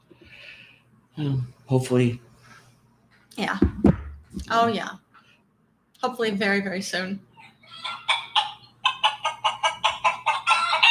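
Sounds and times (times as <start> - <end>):
speech: 1.2 - 2.3, 3.4 - 3.8, 4.5 - 5.0, 6.0 - 8.1
chicken clucking: 7.4 - 10.8
rooster crowing: 7.6 - 10.8.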